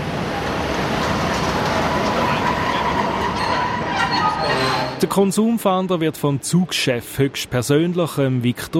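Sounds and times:
train rolling into station with rumble and rattle: 0.0s - 5.6s
train wheels squealing: 1.0s - 5.1s
speech: 5.0s - 8.7s.

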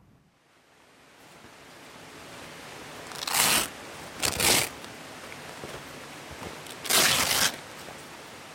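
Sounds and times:
stiff PVC caving suit rustling as it is pulled over a fleece overall: 3.1s - 4.8s, 5.6s - 7.9s.

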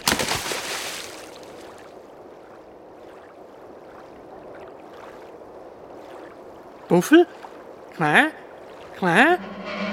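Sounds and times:
bird diving beak first into water: 0.0s - 1.9s
speech: 6.9s - 8.4s, 9.0s - 9.9s.

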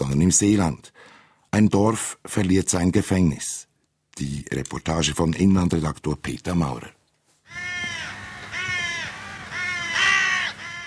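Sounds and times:
speech: 0.2s - 7.0s
crows cawing overhead: 7.4s - 10.8s.

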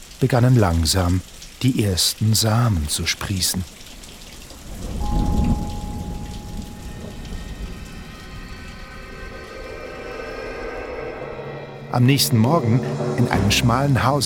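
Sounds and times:
heavy rain pattering on cobblestones in the streets: 0.0s - 10.1s
speech: 0.2s - 3.8s, 11.9s - 14.2s
low rumble: 4.6s - 14.2s.

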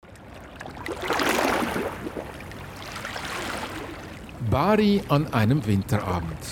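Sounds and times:
sea waves slapping against a promenade wall: 0.6s - 4.2s
speech: 4.5s - 6.5s.

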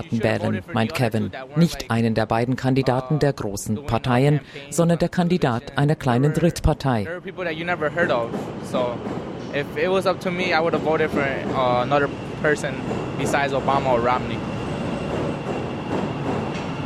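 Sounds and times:
speech: 0.0s - 14.5s
trains passing one after another: 7.1s - 16.8s.

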